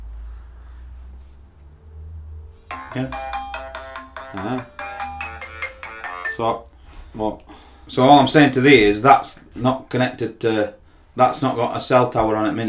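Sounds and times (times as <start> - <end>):
mobile phone ringtone with repeating electronic melody: 2.7 - 6.6
speech: 2.9 - 3.3, 4.3 - 4.8, 6.4 - 12.6.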